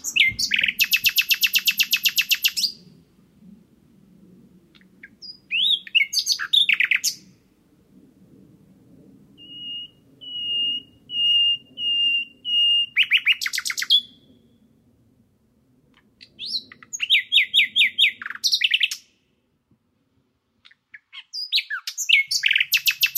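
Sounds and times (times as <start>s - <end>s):
common nightingale singing: 0.0s - 2.9s, 4.8s - 7.2s, 9.4s - 14.2s, 16.2s - 19.1s, 20.6s - 23.1s.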